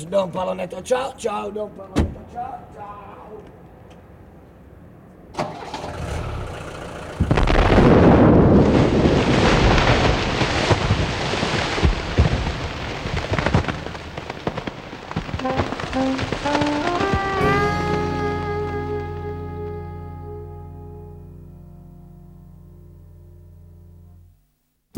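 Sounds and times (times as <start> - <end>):
speech: 0.0 - 3.6
roaring crackling rumble of debris: 5.5 - 19.8
huge explosion tearing apart a truck container: 5.8 - 18.7
sustained musical tones: 16.0 - 24.2.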